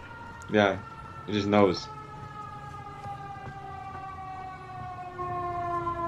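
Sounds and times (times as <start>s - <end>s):
low rumble of traffic: 0.0s - 6.0s
police siren wailing: 0.0s - 6.0s
speech: 0.5s - 2.0s.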